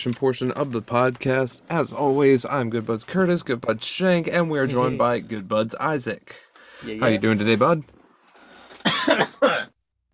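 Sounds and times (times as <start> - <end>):
speech: 0.0 - 8.0, 8.8 - 9.7
person coughing harshly after smoking: 8.8 - 9.8.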